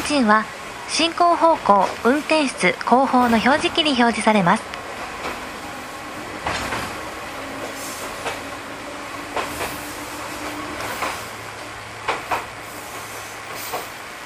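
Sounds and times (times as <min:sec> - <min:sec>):
electric train rumbling heard from inside a carriage: 0:00.0 - 0:14.2
speech: 0:00.1 - 0:04.8
train wheels clicking and knocking on the track: 0:01.1 - 0:14.0.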